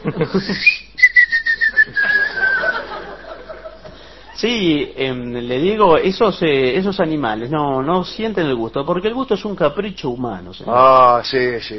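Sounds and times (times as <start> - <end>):
laughter: 0.0 - 0.7, 1.8 - 4.1
speech: 0.1 - 0.8, 4.4 - 11.7
person whistling: 0.5 - 2.8.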